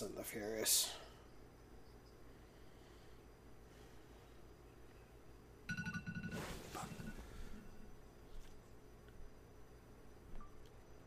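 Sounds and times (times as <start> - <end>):
speech: 0.0 - 1.1
faint room noise: 0.0 - 11.0
phone alarm with rapid warbling electronic tones: 5.7 - 8.0.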